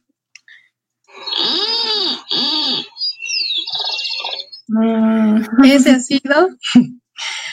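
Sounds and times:
white-tipped plantcutter Phytotoma rutila singing: 0:01.1 - 0:04.7
speech: 0:05.5 - 0:07.0.

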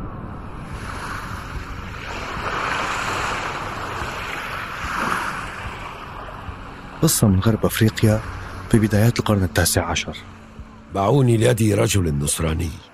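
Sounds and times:
breathy wind-like rush: 0:00.0 - 0:09.4
ocean surf washing in broad swells: 0:00.0 - 0:12.9
speech: 0:07.0 - 0:12.9.

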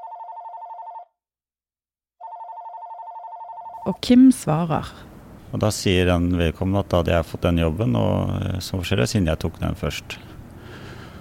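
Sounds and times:
home telephone ringing with warbling trill: 0:00.0 - 0:01.2, 0:02.2 - 0:04.0
speech: 0:03.8 - 0:10.3.

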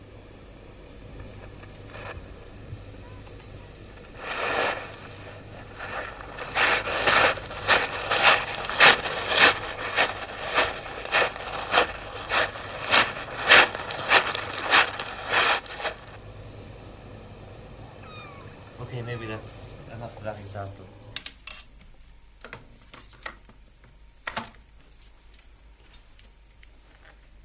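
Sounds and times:
crunching footsteps on a gritty surface: 0:04.0 - 0:16.2.

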